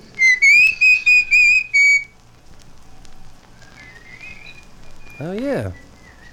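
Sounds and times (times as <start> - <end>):
bird giving clear high whistled calls: 0.1 - 2.1, 3.6 - 6.3
speech: 5.2 - 5.8.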